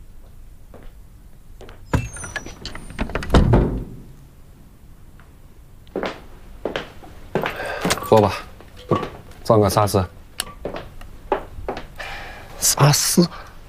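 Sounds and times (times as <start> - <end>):
door being shut: 1.9 - 4.2
speech: 8.1 - 10.2, 12.8 - 13.5.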